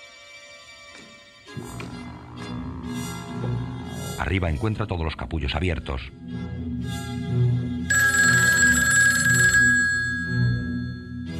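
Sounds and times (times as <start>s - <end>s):
speech: 4.2s - 7.5s
telephone ringing with electric bell tone: 7.9s - 11.3s.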